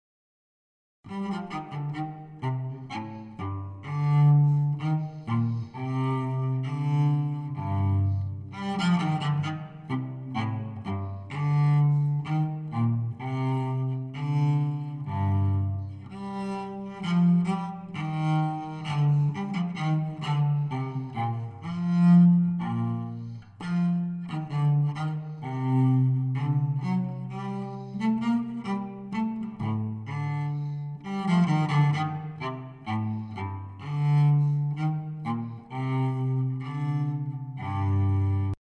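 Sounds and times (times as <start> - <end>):
baroque cello playing: 1.1 - 38.5.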